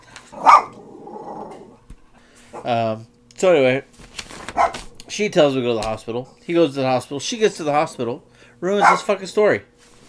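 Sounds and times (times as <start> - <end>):
dog growling at thunder: 0.3 - 1.8
dog barking at thunder: 0.4 - 0.8, 4.6 - 4.9, 8.8 - 9.1
speech: 2.6 - 4.0, 5.1 - 9.7.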